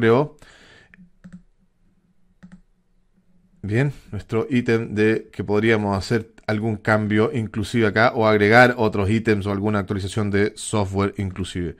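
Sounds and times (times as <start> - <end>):
speech: 0.0 - 0.6, 3.6 - 11.7
computer mouse clicks: 0.9 - 1.6, 2.4 - 2.7.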